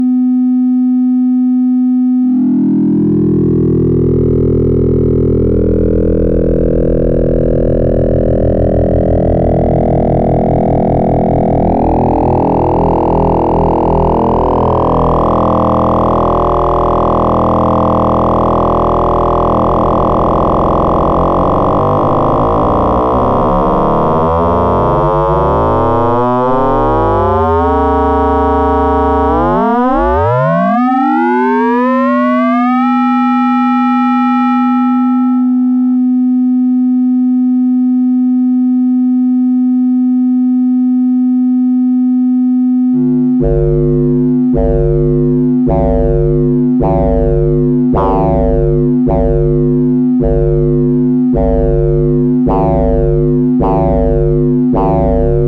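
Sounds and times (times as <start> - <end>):
through-zero FM synthesis tone: 0.0 - 55.4.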